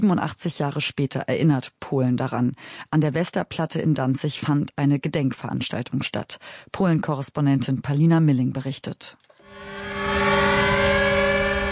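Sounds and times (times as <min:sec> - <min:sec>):
speech: 0:00.0 - 0:09.9
sirens at a war memorial ceremony in Gdańsk: 0:09.4 - 0:11.7.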